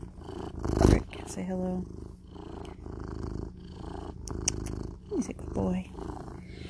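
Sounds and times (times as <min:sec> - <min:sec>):
male cat purring: 0:00.0 - 0:06.6
speech: 0:01.4 - 0:02.0, 0:05.1 - 0:06.6.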